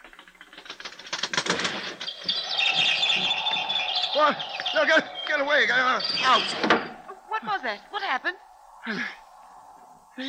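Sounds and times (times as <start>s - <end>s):
bird flapping wings against a rattling window pane: 0.0s - 2.6s
bird chirping: 1.2s - 10.2s
speech: 4.2s - 9.2s.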